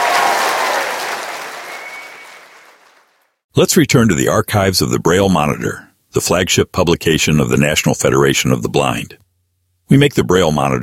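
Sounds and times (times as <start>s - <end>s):
audience applause of many hands clapping: 0.0s - 3.2s
speech: 3.6s - 9.2s, 9.9s - 10.8s.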